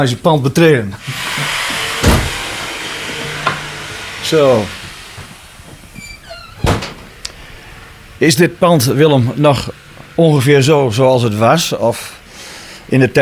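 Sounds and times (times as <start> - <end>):
speech: 0.0 - 1.2, 4.3 - 4.8, 8.2 - 12.2, 12.9 - 13.1
heavy sawing machine whine: 0.7 - 13.1
front door opening clunk and rattle: 1.4 - 7.2.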